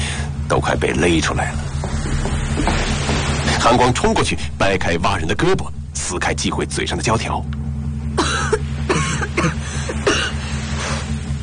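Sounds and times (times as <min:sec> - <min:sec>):
steady low hum: 0:00.0 - 0:11.4
speech: 0:00.5 - 0:01.7, 0:03.6 - 0:07.6, 0:09.4 - 0:10.0
person coughing violently: 0:08.2 - 0:10.4.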